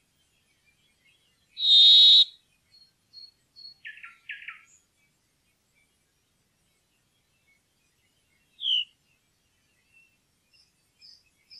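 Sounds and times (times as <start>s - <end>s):
brambling buzzy wheeze call: 1.6s - 2.3s
brambling soft short calls: 1.6s - 2.4s, 8.6s - 8.9s.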